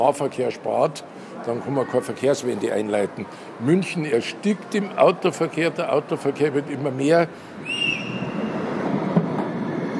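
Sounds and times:
speech: 0:00.0 - 0:07.8
city tram in Munich rumbling past: 0:03.9 - 0:09.9.

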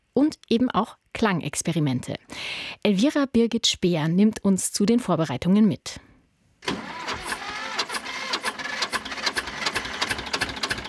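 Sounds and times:
speech: 0:00.2 - 0:06.8
1965 tractor chugging across festival grounds in Stelzen in the Vogtland: 0:06.6 - 0:10.8.

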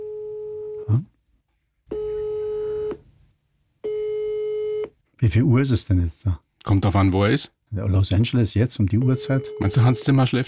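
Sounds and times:
speech: 0:00.9 - 0:01.1, 0:05.2 - 0:10.4
phone line ringing tone of electronic beeps: 0:01.9 - 0:03.0, 0:03.8 - 0:04.9, 0:09.0 - 0:10.2.

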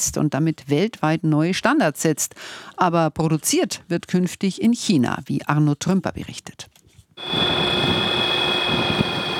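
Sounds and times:
speech: 0:00.0 - 0:07.7
small battery-powered electric propeller plane flying past: 0:07.2 - 0:09.3.

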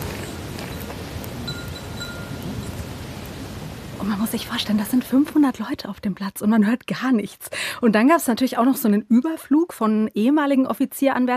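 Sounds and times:
flags on a parade square flapping in the wind: 0:00.0 - 0:04.0
speech: 0:04.0 - 0:11.3.

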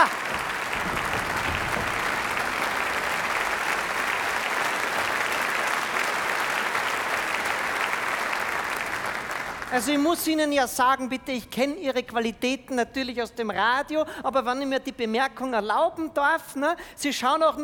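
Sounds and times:
sustained applause from a large audience: 0:00.0 - 0:10.3
speech: 0:09.8 - 0:17.6.

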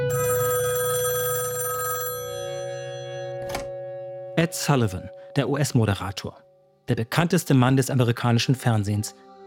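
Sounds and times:
telephone bell ringing with a bright metallic jangle: 0:00.1 - 0:04.3
speech: 0:04.4 - 0:09.3.

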